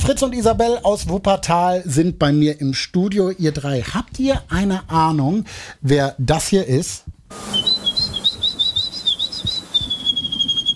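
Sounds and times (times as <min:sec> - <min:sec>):
speech: 0:00.0 - 0:08.0
woman imitating birdsong by whistling: 0:07.4 - 0:10.7.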